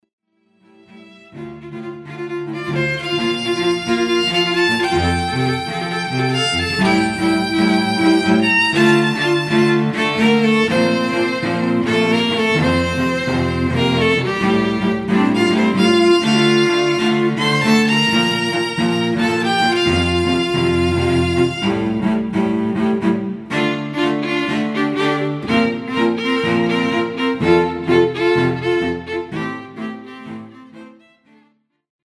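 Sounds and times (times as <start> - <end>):
string trio playing: 0.6 - 31.5.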